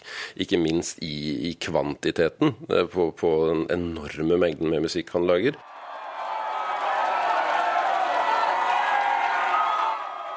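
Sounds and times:
speech: 0:00.3 - 0:05.7
large young concert crowd in the USA cheering and screaming: 0:05.6 - 0:10.3
concert audience members whooping: 0:05.7 - 0:10.3.

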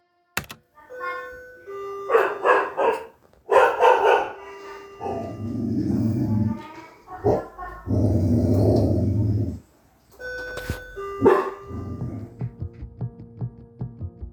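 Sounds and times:
guarding dog barking aggressively: 0:02.0 - 0:05.4, 0:07.1 - 0:07.9, 0:11.1 - 0:12.0
guarding dog growling low: 0:05.0 - 0:09.7.

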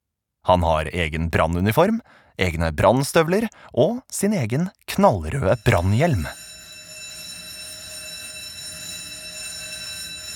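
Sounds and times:
speech: 0:00.4 - 0:06.4
fire station alarm ringing: 0:05.1 - 0:10.3.

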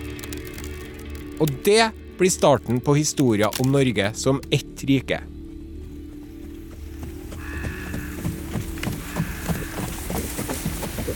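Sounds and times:
speech: 0:01.4 - 0:05.4
hoofbeats of horses pulling sleds: 0:03.9 - 0:11.1.

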